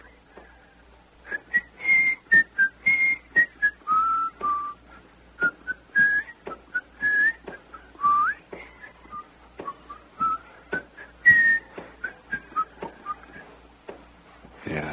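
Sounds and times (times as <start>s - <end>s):
marching band members whistling a lively bouncy tune: 1.3s - 4.8s, 5.4s - 13.6s.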